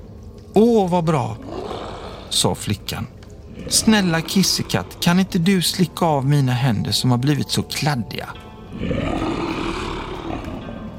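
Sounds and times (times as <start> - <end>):
speech: 0.8 - 9.3
lion roaring: 1.4 - 2.4, 3.5 - 5.7, 8.7 - 10.9.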